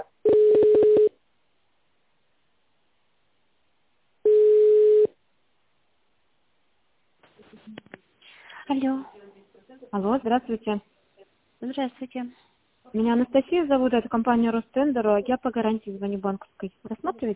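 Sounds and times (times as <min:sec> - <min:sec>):
telephone ringback tone while a call is transferred: 0:00.0 - 0:01.1, 0:04.3 - 0:05.1
speech: 0:08.7 - 0:09.2, 0:09.9 - 0:10.9, 0:11.6 - 0:17.3.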